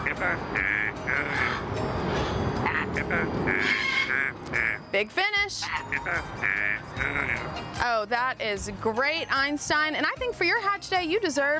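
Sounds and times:
female parrot singing a song: 0:00.0 - 0:01.8, 0:02.6 - 0:07.7
speech: 0:00.2 - 0:01.8, 0:03.0 - 0:11.5.

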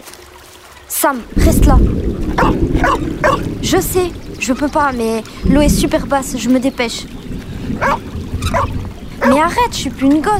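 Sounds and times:
speech: 0:01.0 - 0:10.3
steady low rumble: 0:01.3 - 0:10.3
dog barking: 0:02.4 - 0:03.5, 0:07.8 - 0:09.4.

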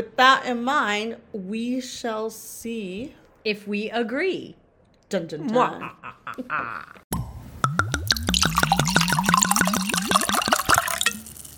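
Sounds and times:
speech: 0:00.0 - 0:07.0
wine glugging from a bottle into a glass: 0:08.0 - 0:11.5.

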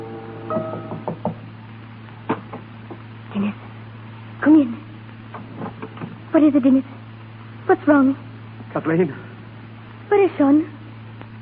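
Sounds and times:
low steady hum: 0:00.0 - 0:11.3
soft knocks on a door: 0:00.5 - 0:01.4
speech: 0:06.4 - 0:07.0, 0:07.8 - 0:09.3, 0:10.1 - 0:10.8.

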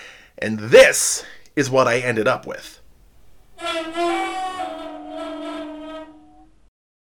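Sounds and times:
speech: 0:00.4 - 0:02.8
vuvuzela note muffled by pressing its bell against a drum skin: 0:03.6 - 0:06.6.

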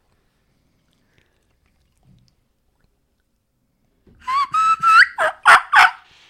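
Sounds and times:
young turkey hen giving thin rising whistled kee notes: 0:04.2 - 0:05.9.

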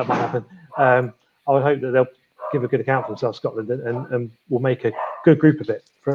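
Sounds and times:
speech: 0:00.0 - 0:06.1
dog barking: 0:02.4 - 0:04.2, 0:04.9 - 0:05.4.

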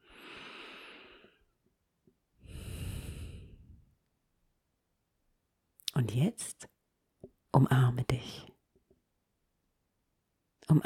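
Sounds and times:
deep breathing in and out: 0:00.0 - 0:01.5, 0:02.4 - 0:03.9
speech: 0:06.0 - 0:06.7, 0:07.6 - 0:08.5, 0:10.7 - 0:10.8.

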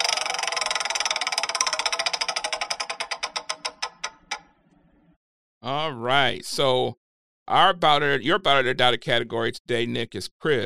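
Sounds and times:
game show prize wheel spinning and ticking: 0:00.0 - 0:04.5
speech: 0:05.6 - 0:10.6.

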